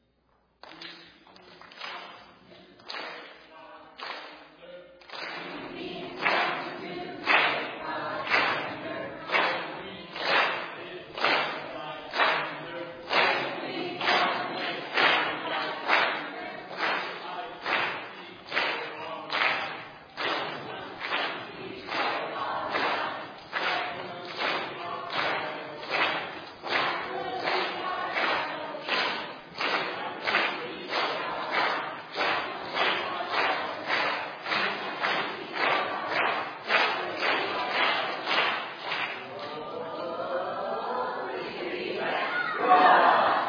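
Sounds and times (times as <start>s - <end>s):
team chanting a rhythmic cheer: 2.8s - 43.4s
loud stomps or claps: 5.0s - 39.2s.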